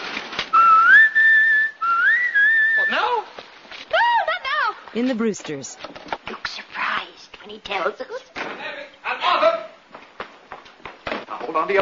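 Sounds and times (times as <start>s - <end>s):
person whistling a signal: 0.5s - 3.0s
speech: 5.0s - 6.0s, 7.5s - 9.6s, 11.5s - 11.8s.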